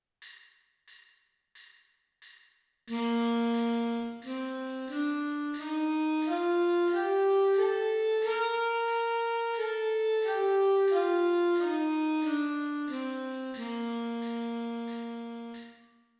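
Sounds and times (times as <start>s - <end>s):
alto saxophone playing a G major scale: 2.9s - 15.8s.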